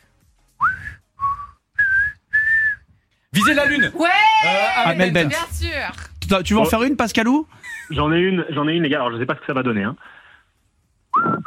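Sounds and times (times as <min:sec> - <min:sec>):
person whistling a song tune in a song-guessing game: 0:00.6 - 0:02.9, 0:11.1 - 0:11.4
speech: 0:03.4 - 0:10.2.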